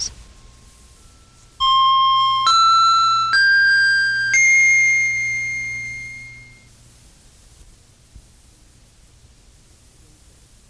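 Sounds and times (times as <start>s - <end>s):
faint low hum: 0.0s - 10.6s
bright chime tones opening a hypnosis therapy session: 0.2s - 6.7s.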